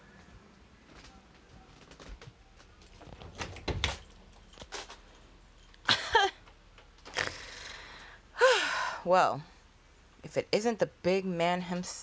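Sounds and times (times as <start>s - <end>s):
quiet shuffling: 0.0s - 5.9s
door creaking squeak: 0.9s - 5.0s
door clunks and rattles: 2.9s - 4.2s
speech: 9.1s - 9.5s, 10.2s - 12.0s.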